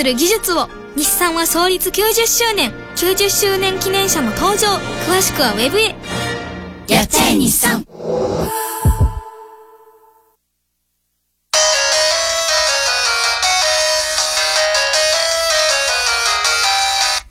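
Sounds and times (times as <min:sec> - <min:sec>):
speech: 0:00.0 - 0:06.2, 0:06.9 - 0:08.6
low thumps: 0:08.3 - 0:09.4
telephone ringtone melody: 0:11.6 - 0:17.2.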